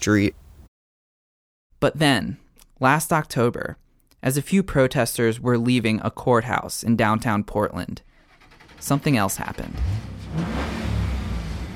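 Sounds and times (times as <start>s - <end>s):
speech: 0.0s - 0.4s, 1.8s - 8.1s, 8.8s - 11.0s
muscle car engine revving as the car passes: 9.7s - 11.7s.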